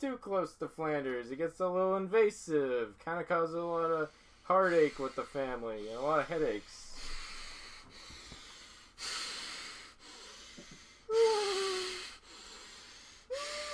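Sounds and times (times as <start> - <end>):
speech: 0.0 - 7.1
loud wheezy breathing through the nose into the microphone: 4.0 - 13.7.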